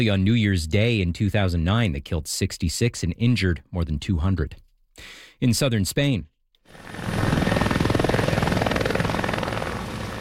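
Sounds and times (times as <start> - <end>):
speech: 0.0 - 7.0
helicopters carrying firefighters over a wildfire in Almeria province, Spain: 6.7 - 10.1.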